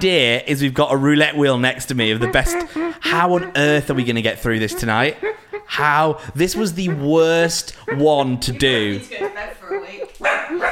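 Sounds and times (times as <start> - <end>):
speech: 0.0 - 10.7
laughter: 2.2 - 10.1
dog barking: 5.2 - 5.6, 8.9 - 10.7.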